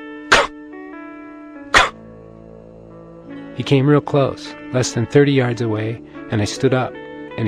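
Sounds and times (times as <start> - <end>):
voice imitating a male antelope's alarm bark: 0.3 - 0.5, 1.8 - 2.0
speech: 3.6 - 7.4.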